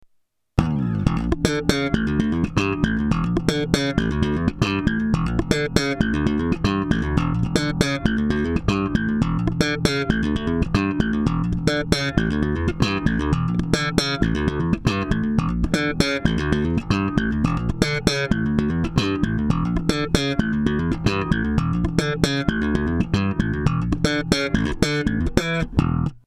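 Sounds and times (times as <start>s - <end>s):
studio compressed bass: 0.6s - 26.2s.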